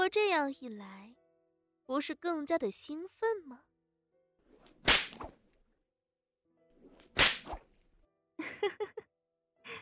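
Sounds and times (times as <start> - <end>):
speech: 0.1 - 1.2, 1.9 - 3.7, 8.4 - 9.0
whip lashes: 4.6 - 5.4, 7.0 - 7.8.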